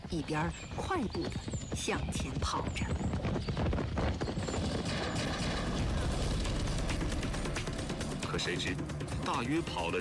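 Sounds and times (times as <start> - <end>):
speech: 0.1 - 5.4, 8.3 - 9.9
heavy machine gun fire in an attack on marching troops: 4.4 - 7.8.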